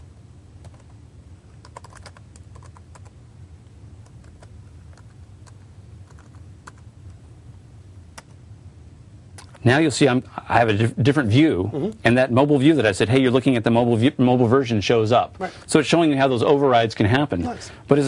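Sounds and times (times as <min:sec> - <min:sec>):
low steady hum: 0:00.0 - 0:18.0
keys clicking on a computer keyboard typing a URL: 0:00.6 - 0:01.0, 0:01.6 - 0:03.2, 0:04.0 - 0:06.9
speech: 0:09.6 - 0:18.0.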